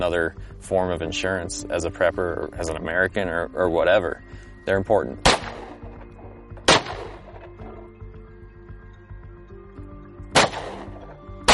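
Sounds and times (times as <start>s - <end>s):
speech: 0.0s - 5.4s
steady tonal background: 0.0s - 11.5s
gunshots fired from a gun: 5.2s - 6.0s, 6.6s - 7.5s, 10.3s - 11.5s.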